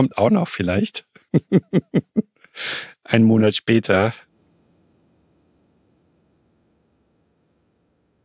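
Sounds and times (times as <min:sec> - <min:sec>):
speech: 0:00.0 - 0:04.3
laughter: 0:01.2 - 0:02.3
redwing high-pitched flight call at night: 0:04.3 - 0:08.2.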